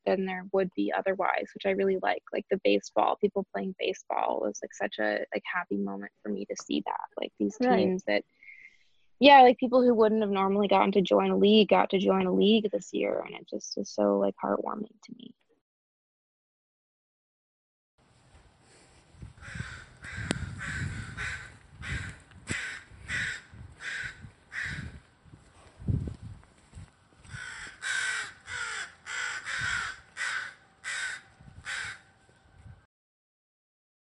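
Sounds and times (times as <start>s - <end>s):
speech: 0.1s - 8.5s, 9.2s - 15.4s
several crows cawing outdoors in the morning: 19.4s - 25.0s, 27.3s - 32.1s.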